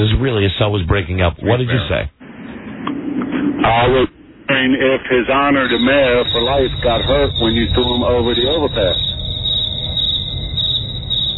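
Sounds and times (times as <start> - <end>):
speech: 0.0 - 2.2, 3.2 - 9.1
low hum: 0.0 - 11.3
crickets chirping in a high-pitched trill: 3.8 - 11.3.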